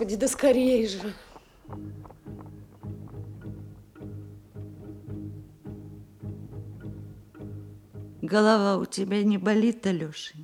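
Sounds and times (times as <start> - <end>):
speech: 0.0 - 2.2, 8.3 - 10.4
horses' hooves clip-clopping slowly: 0.0 - 5.8.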